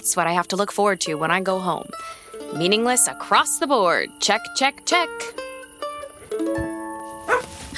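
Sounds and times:
speech: 0.0s - 5.4s
dog barking: 7.3s - 7.6s.

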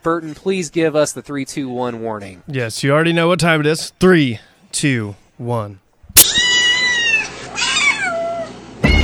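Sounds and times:
speech: 0.0s - 6.3s
cat meowing: 6.2s - 8.6s.

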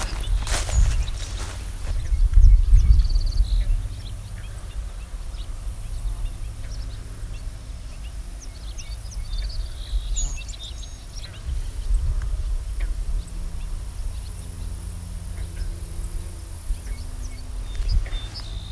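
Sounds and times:
footsteps: 0.0s - 2.1s
bobolink flock high-pitched short call notes: 0.0s - 18.6s
low outdoor rumble: 0.0s - 18.6s.

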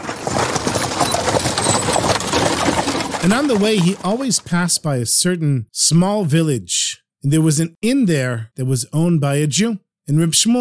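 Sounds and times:
horse hooves clip-clopping pulling a carriage through the countryside: 0.0s - 4.8s
horse-drawn carriage rough rolling noise: 0.0s - 4.8s
speech: 3.2s - 10.5s.

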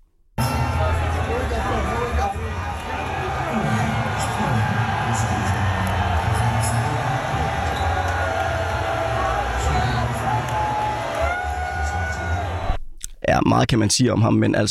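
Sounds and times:
large crowd applauding and cheering in an arena: 0.4s - 12.8s
speech: 13.3s - 14.7s.

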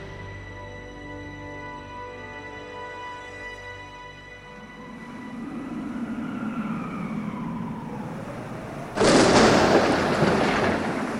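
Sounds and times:
faint wavering tones: 0.0s - 11.1s
typhoon roaring with a deep steady rumble in Wenzhou, Zhejiang: 4.6s - 11.1s
heavy wind-driven typhoon rain pounding in Wenzhou, Zhejiang: 4.8s - 11.1s.

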